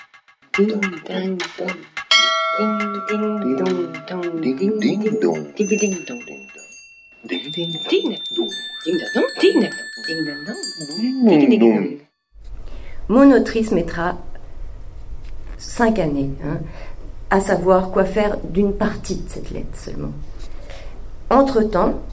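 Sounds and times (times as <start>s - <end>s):
speech: 0.6s - 2.0s, 2.6s - 12.1s, 13.1s - 14.3s, 15.6s - 20.4s, 21.3s - 22.1s
bright bell chime: 2.1s - 11.5s.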